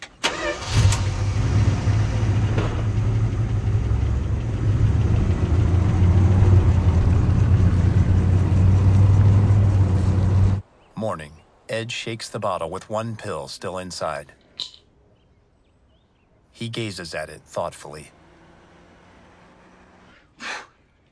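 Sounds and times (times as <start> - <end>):
vehicle engine cranking and catching: 0.0 - 2.9
truck engine settling into a steady low rumble: 0.0 - 10.8, 16.6 - 21.0
speech: 11.2 - 14.8, 16.6 - 18.2.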